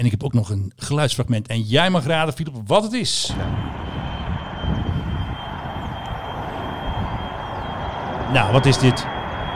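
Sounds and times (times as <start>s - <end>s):
speech: 0.0s - 4.1s, 8.3s - 9.1s
older Fokker propeller airliner engines droning: 3.1s - 9.5s.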